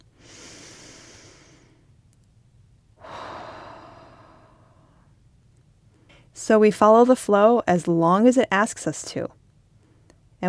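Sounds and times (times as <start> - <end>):
deep breathing: 0.1 - 2.0, 3.0 - 5.1
speech: 6.4 - 9.4.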